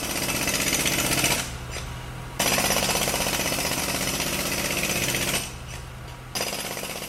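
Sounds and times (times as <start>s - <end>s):
jackhammer pounding: 0.0s - 1.6s, 2.4s - 5.6s, 6.3s - 7.0s.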